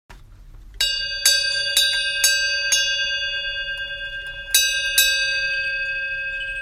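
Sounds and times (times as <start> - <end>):
medium bronze bell: 0.8 - 6.6.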